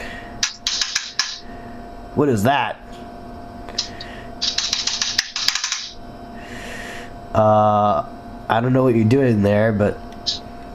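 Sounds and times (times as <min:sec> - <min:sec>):
low steady hum: 0:00.0 - 0:10.7
typing on an older membrane computer keyboard: 0:00.4 - 0:01.4, 0:04.4 - 0:05.9
speech: 0:02.2 - 0:02.9, 0:07.4 - 0:10.0.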